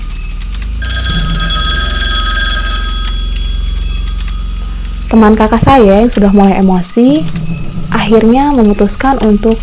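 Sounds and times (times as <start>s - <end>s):
telephone bell ringing with a shrill metallic trill: 0.8s - 5.6s
speech: 5.1s - 9.6s.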